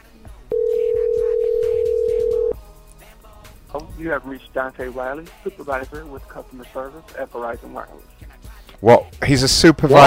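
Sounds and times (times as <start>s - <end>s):
telephone tone of a call placed to a cell phone: 0.5s - 2.6s
speech: 3.8s - 8.2s, 8.8s - 10.0s.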